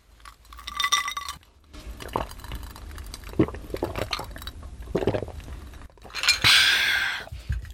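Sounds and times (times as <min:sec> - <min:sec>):
liquid sounds: 0:00.1 - 0:07.7
glasses clinking in a toast: 0:00.4 - 0:01.4, 0:06.1 - 0:06.7.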